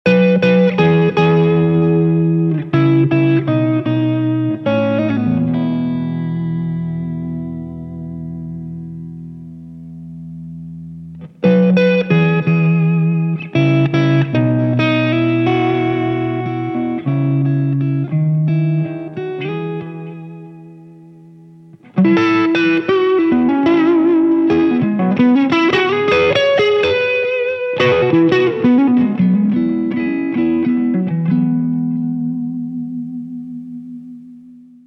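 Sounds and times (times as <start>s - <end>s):
clean guitar amp tone: 0.1s - 34.8s.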